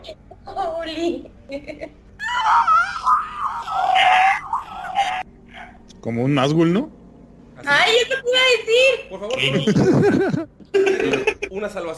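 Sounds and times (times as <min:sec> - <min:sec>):
speech: 0:00.0 - 0:03.2, 0:06.0 - 0:07.0, 0:07.6 - 0:11.9
person voicing a strained inhaled shriek imitating a creature's scream: 0:02.2 - 0:05.2
laughter: 0:09.5 - 0:11.5.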